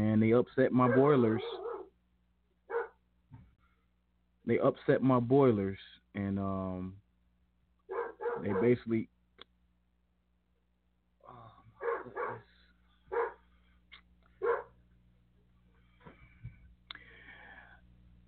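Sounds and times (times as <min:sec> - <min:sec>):
speech: 0:00.2 - 0:01.6, 0:04.5 - 0:07.0, 0:08.4 - 0:09.1
dog outside barking at a window: 0:00.8 - 0:01.9, 0:02.7 - 0:03.0, 0:07.9 - 0:08.8, 0:11.8 - 0:13.4, 0:14.4 - 0:14.8.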